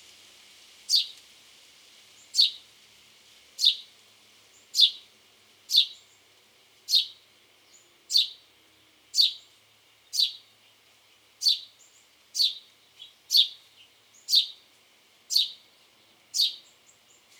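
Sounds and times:
house sparrow chirping: 0:03.6 - 0:03.9, 0:04.8 - 0:05.0, 0:05.7 - 0:06.0, 0:06.9 - 0:08.4, 0:09.2 - 0:09.5, 0:10.1 - 0:10.5, 0:11.4 - 0:14.6, 0:15.3 - 0:15.6, 0:16.3 - 0:17.3.

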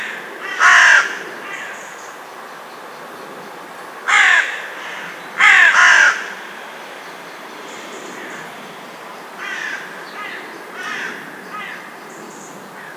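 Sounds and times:
carrion crow Corvus corone giving harsh rasping caws: 0:00.0 - 0:01.8, 0:04.0 - 0:06.5, 0:09.4 - 0:11.9.

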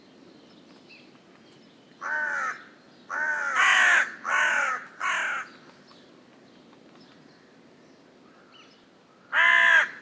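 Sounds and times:
carrion crow Corvus corone giving harsh rasping caws: 0:02.0 - 0:05.5, 0:09.2 - 0:10.0.

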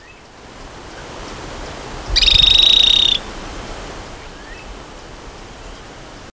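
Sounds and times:
bird giving a high rapid buzzy trill: 0:02.1 - 0:03.2.

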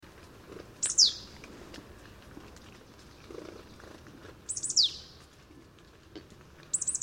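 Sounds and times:
low steady background hiss: 0:00.0 - 0:07.0
marsh tit Poecile palustris giving high downward-sliding calls: 0:00.8 - 0:01.3, 0:04.5 - 0:05.1, 0:06.7 - 0:07.0.

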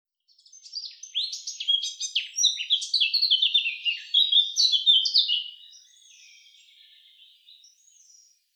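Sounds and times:
Eurasian blackcap Sylvia atricapilla song: 0:00.2 - 0:08.5.

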